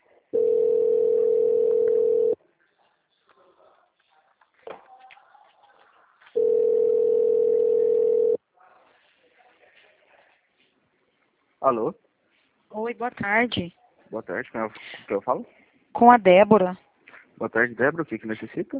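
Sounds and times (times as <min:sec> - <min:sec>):
faint scattered noise: 0:00.0 - 0:18.7
telephone line tone during a call transfer: 0:00.4 - 0:02.4, 0:06.4 - 0:08.4
speech: 0:11.7 - 0:12.0, 0:12.9 - 0:16.8, 0:17.4 - 0:18.7.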